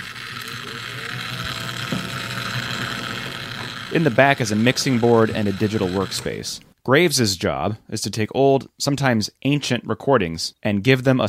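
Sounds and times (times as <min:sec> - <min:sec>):
record vacuum cleaning machine motor whirring: 0:00.0 - 0:06.7
speech: 0:01.9 - 0:02.1, 0:03.9 - 0:11.2.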